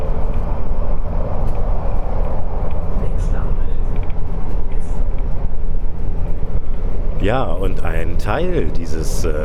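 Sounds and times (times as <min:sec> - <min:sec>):
moving train wheels rumbling and clattering on the track: 0:00.0 - 0:09.4
speech: 0:07.2 - 0:09.4.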